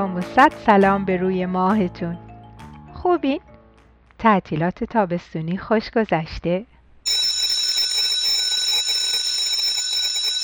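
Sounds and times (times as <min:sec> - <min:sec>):
speech: 0:00.0 - 0:02.3, 0:03.0 - 0:03.5, 0:04.2 - 0:06.7
electric school bell ringing: 0:07.1 - 0:10.4.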